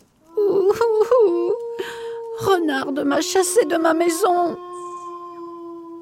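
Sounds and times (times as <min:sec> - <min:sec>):
human voice imitating a wolf crying: 0:00.3 - 0:06.0
brief breathy sound: 0:01.7 - 0:02.4
speech: 0:02.7 - 0:04.7.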